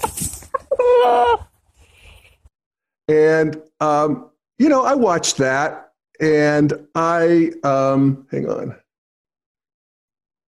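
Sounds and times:
pet chicken clucking and squawking: 0.0 - 1.6
speech: 3.1 - 8.8.

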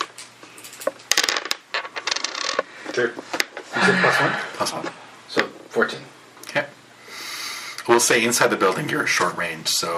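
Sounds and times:
four dice tumbling and clattering across a hard tabletop: 0.8 - 2.7
speech: 3.0 - 6.7, 7.9 - 9.9.

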